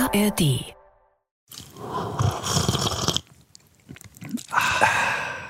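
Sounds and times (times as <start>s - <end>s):
speech: 0.1s - 0.8s
loud wet slurping: 1.5s - 5.4s.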